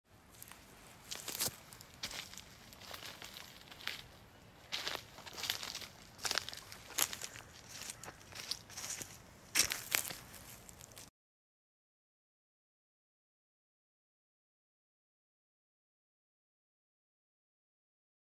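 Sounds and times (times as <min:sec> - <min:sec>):
footsteps walking on twigs and leaves: 0:00.2 - 0:11.1.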